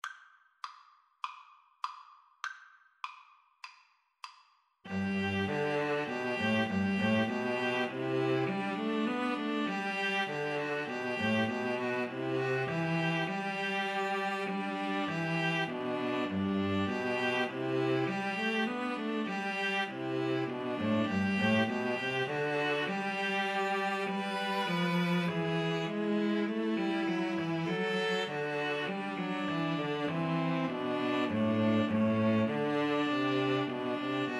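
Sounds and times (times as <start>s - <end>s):
string trio playing: 4.9s - 34.3s.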